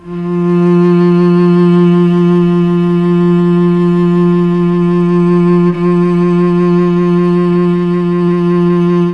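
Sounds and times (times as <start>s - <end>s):
Mellotron cello note F2: 0.0s - 9.1s.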